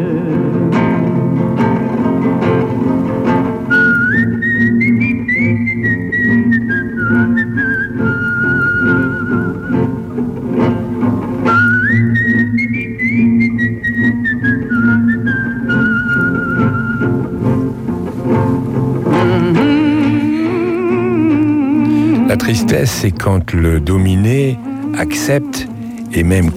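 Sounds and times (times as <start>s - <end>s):
steady low musical backing: 0.0s - 26.5s
person whistling a slow sustained melody: 3.7s - 9.9s, 11.5s - 17.2s
speech: 22.4s - 26.5s.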